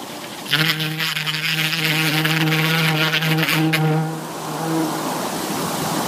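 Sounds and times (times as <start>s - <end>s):
bee buzzing during buzz pollination: 0.1s - 5.3s.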